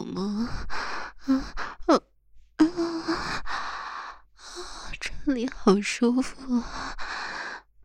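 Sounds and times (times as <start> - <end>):
heavy breathing with ragged breaths: 0.0 - 1.9, 2.6 - 5.2, 6.5 - 7.7
speech: 0.2 - 2.0, 5.4 - 7.0.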